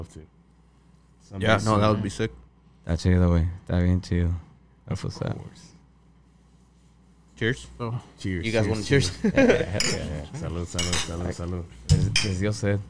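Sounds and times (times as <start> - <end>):
speech: 0.0 - 0.4, 1.2 - 5.8, 7.4 - 12.8
several overlapping voices laughing: 9.0 - 10.7
glasses clinking in a toast: 9.5 - 10.2, 10.8 - 11.2, 11.9 - 12.4.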